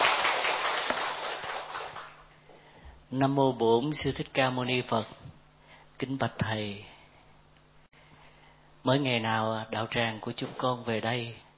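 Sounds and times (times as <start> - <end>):
audience at a Buddhist dharma talk applauding to welcome a monk: 0.0 - 2.2
speech: 3.1 - 5.2, 6.0 - 6.9, 8.8 - 11.4.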